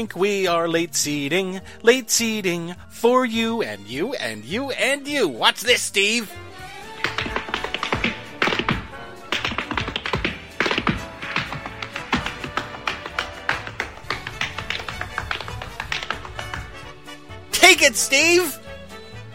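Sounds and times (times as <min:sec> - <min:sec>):
speech: 0:00.0 - 0:06.5, 0:17.8 - 0:18.6
knocking on a door: 0:07.1 - 0:16.7.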